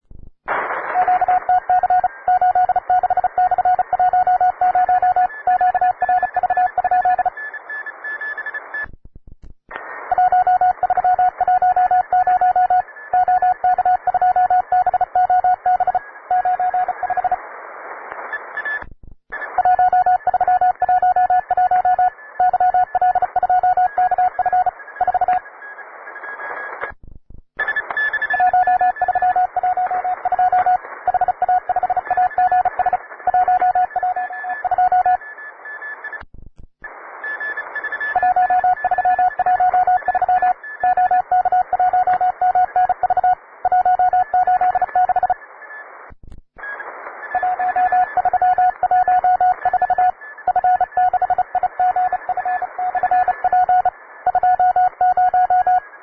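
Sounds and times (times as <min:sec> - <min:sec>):
advanced morse code beeps: 0:01.0 - 0:08.9, 0:10.1 - 0:17.4, 0:19.4 - 0:25.5, 0:27.6 - 0:36.2, 0:37.3 - 0:45.4, 0:47.3 - 0:55.9.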